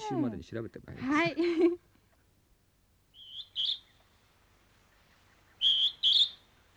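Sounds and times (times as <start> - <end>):
speech: 0.1 - 1.8
Hodgson's hawk-cuckoo giving whistled two-note calls: 3.1 - 4.0, 5.4 - 6.7.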